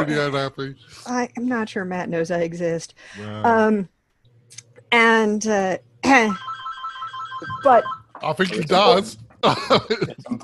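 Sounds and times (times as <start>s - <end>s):
faint low hum: 0.0s - 6.4s, 7.4s - 10.4s
speech: 0.0s - 6.5s, 7.4s - 10.4s
phone ringing with buzzy electronic tones: 6.1s - 8.1s
laughter: 8.4s - 10.4s.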